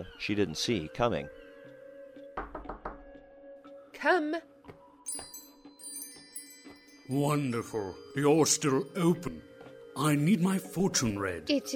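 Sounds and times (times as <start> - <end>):
speech: 0.0 - 1.4, 4.0 - 4.5, 5.1 - 5.4, 7.1 - 11.7
solid knocks on a fortune teller's wooden door: 2.4 - 3.1.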